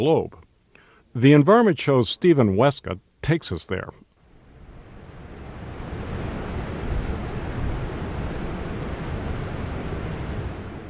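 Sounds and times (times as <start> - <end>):
speech: 0.0 - 0.4, 1.2 - 4.0
river water roaring down a waterfall: 4.3 - 10.8.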